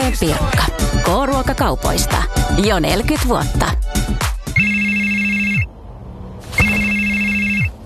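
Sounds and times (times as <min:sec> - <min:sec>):
speech: 0:00.1 - 0:04.3
telephone ringing with an electronic trill: 0:04.5 - 0:05.7, 0:06.5 - 0:07.8.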